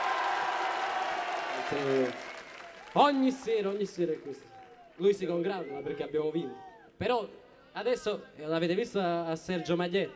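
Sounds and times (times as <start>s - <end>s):
audience applause: 0.0s - 5.1s
speech: 1.7s - 2.2s, 2.9s - 10.1s.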